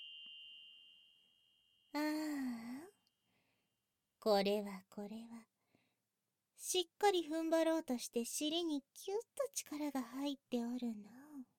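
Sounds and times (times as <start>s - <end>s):
small bell ringing: 0.0s - 2.1s
speech: 4.2s - 5.5s, 6.6s - 11.2s.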